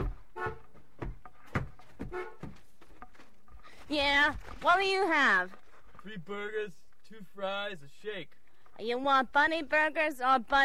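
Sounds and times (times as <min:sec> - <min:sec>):
car horn honking: 0:00.0 - 0:00.7, 0:02.0 - 0:02.6
speech: 0:03.9 - 0:10.6.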